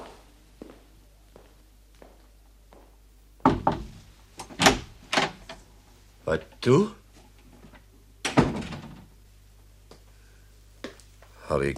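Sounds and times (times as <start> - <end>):
heavy knocks on a wooden door: 3.4 - 3.9
speech: 6.3 - 7.0, 11.6 - 11.7.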